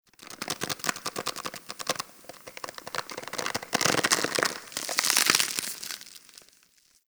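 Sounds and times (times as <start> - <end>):
large tendon stretching: 0.2 - 6.5.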